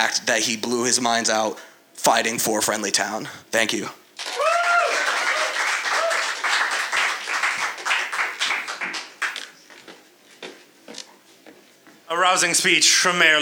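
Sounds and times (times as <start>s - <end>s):
speech: 0.0s - 4.4s, 12.2s - 13.4s
scattered audience applause: 4.2s - 9.6s.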